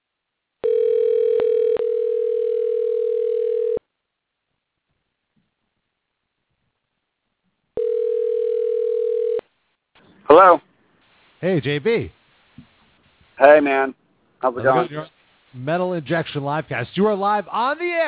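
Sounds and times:
telephone tone while placing a call: 0.6s - 3.8s, 7.8s - 9.4s
speech: 10.3s - 10.7s, 11.4s - 12.7s, 13.4s - 18.0s.

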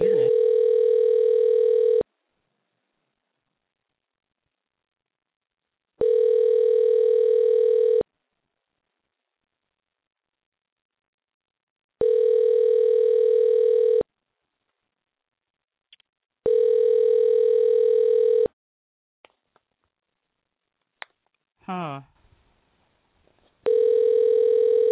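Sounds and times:
steady low electronic telephone line tone while dialing a call: 0.0s - 2.0s, 6.0s - 8.0s, 12.0s - 14.0s, 16.5s - 18.5s, 23.7s - 24.8s.

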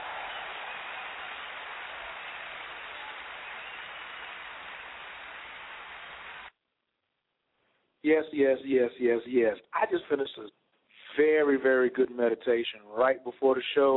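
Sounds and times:
audience applause: 0.0s - 6.5s
speech: 8.0s - 10.6s, 11.2s - 13.9s.

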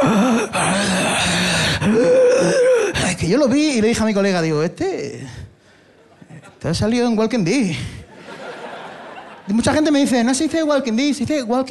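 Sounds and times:
person imitating laboured heavy breathing: 0.0s - 3.2s
speech: 3.4s - 5.5s, 6.6s - 8.0s, 9.5s - 11.7s
laughter: 8.0s - 10.0s.

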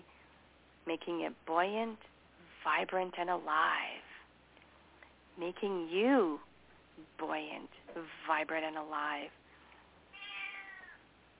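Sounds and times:
speech: 0.9s - 4.0s, 5.4s - 9.4s
cat meowing: 10.1s - 11.0s.

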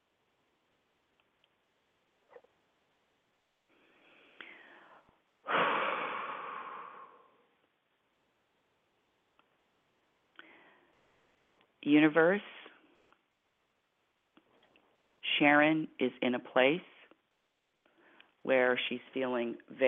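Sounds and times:
slow deep breathing during a guided relaxation exercise: 3.7s - 7.4s, 10.4s - 11.0s
speech: 11.8s - 12.6s, 15.4s - 16.9s, 18.4s - 19.8s.

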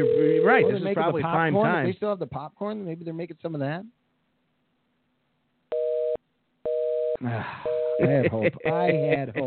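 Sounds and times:
telephone ringing tone of an unanswered call to a video store: 0.0s - 0.8s, 5.7s - 8.0s
speech: 0.0s - 4.0s, 7.2s - 9.4s.

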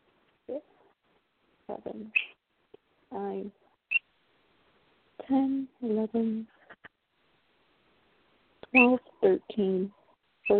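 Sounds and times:
speech: 0.5s - 0.7s, 1.8s - 2.4s, 3.1s - 3.6s, 5.3s - 6.6s, 8.7s - 10.5s
pet bird chirping: 2.0s - 2.4s, 8.6s - 9.1s.

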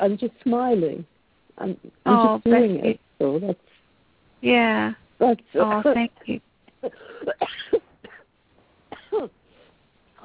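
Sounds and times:
speech: 0.0s - 3.7s, 4.4s - 7.9s, 9.2s - 9.4s
person coughing: 6.8s - 8.3s, 8.9s - 9.4s.

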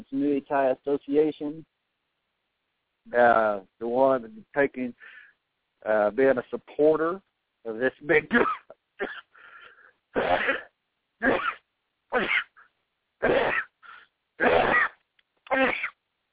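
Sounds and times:
speech: 0.1s - 1.8s, 3.1s - 5.2s, 5.8s - 9.2s, 10.1s - 12.5s, 13.2s - 13.6s
breathy sounds: 9.3s - 10.0s
person sneezing: 10.2s - 11.6s, 13.2s - 16.0s.

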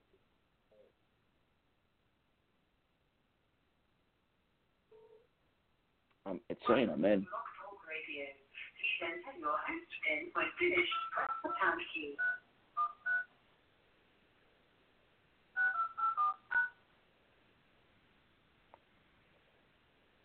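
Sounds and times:
speech: 6.3s - 12.4s
telephone keypad tones as a PIN is entered: 10.9s - 13.3s, 15.6s - 16.8s.

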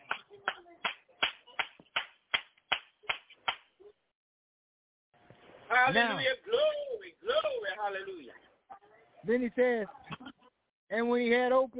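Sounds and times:
congregation clapping hands at a church service: 0.0s - 3.7s
speech: 5.9s - 8.5s, 9.2s - 10.0s, 10.9s - 11.7s.

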